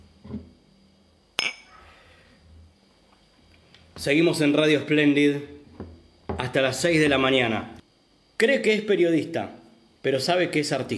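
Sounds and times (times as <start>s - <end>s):
glasses clinking together in a toast: 1.4s - 2.0s
speech: 4.0s - 5.6s, 6.5s - 7.8s, 8.4s - 10.9s.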